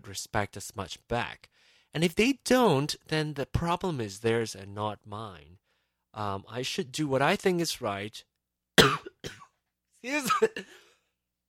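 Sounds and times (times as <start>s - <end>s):
speech: 0.0s - 9.4s, 10.0s - 10.8s
person recovering from a cold coughing: 8.8s - 9.6s, 10.2s - 10.9s.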